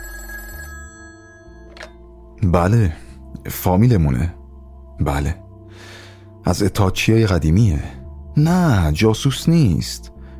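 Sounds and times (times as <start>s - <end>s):
telephone ringing with steady electronic tone: 0.0s - 2.2s
speech: 2.4s - 4.4s, 5.0s - 10.1s.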